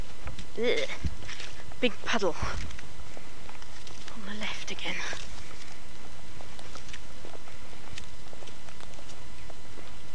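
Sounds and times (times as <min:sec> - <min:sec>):
footsteps crunching on squeaky packed snow: 0:00.0 - 0:10.1
speech: 0:00.6 - 0:01.1, 0:01.8 - 0:02.8, 0:04.3 - 0:05.3.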